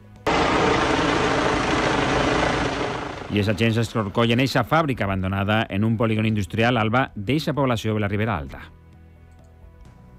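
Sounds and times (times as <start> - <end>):
helicopter rotor and engine flying overhead: 0.0 - 4.4
speech: 3.3 - 8.8.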